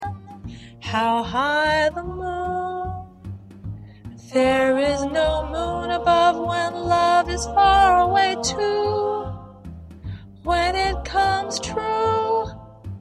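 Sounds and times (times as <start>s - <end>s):
soprano lead vocal singing jazz: 0.8s - 3.1s, 4.2s - 9.7s, 10.4s - 12.7s.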